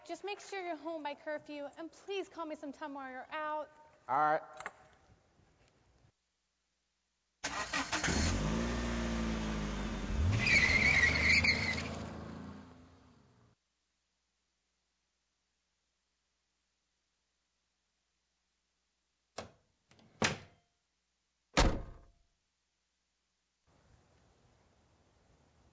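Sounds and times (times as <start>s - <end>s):
speech: 0.1s - 4.6s
car engine cranking and running: 7.4s - 13.5s
car door thuds: 21.6s - 22.1s.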